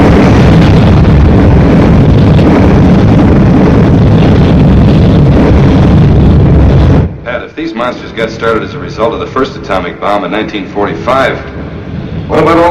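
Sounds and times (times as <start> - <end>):
roar of flamethrowers burning a nest of monstrous creatures: 0.0 - 7.3
speech: 7.8 - 11.6, 12.3 - 12.7.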